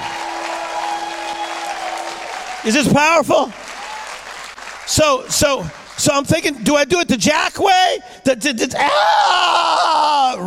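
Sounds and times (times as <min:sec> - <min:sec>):
crowd clapping: 0:00.0 - 0:06.7
speech: 0:02.6 - 0:03.7, 0:04.9 - 0:10.4.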